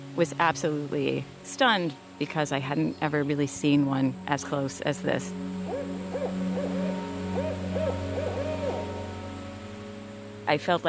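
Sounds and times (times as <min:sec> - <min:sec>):
steady low hum: 0:00.0 - 0:10.8
speech: 0:00.2 - 0:05.5, 0:10.5 - 0:10.8
barred owl hooting: 0:05.2 - 0:10.0.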